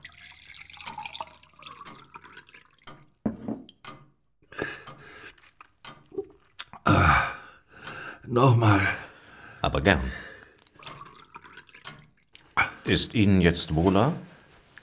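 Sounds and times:
water running and splashing into a glass: 0.0s - 3.8s, 4.9s - 7.0s, 9.8s - 13.0s
faint water dripping: 0.0s - 4.0s, 4.6s - 14.8s
speech: 8.3s - 9.0s, 9.7s - 10.3s, 12.9s - 14.3s.

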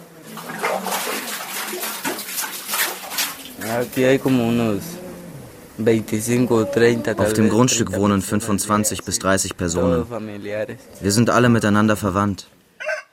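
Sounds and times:
water splashing and sloshing in a bucket drawn up from a well: 0.0s - 4.4s
speech: 3.7s - 5.0s, 5.8s - 12.6s.

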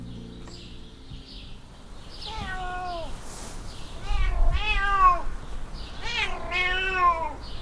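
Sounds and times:
African wildcat meowing: 2.2s - 3.2s, 4.0s - 7.4s.

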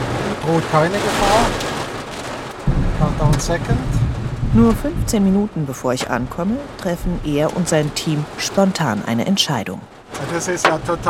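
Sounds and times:
steady rain hiss heard from inside a car during a storm: 0.0s - 11.0s
speech: 0.5s - 1.7s, 3.0s - 11.0s
deep loud thunder rumble after a lightning strike: 0.9s - 8.4s.

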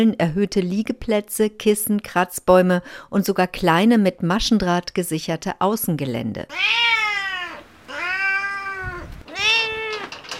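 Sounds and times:
speech: 0.0s - 7.2s
cat meowing in a cage: 6.5s - 10.2s.

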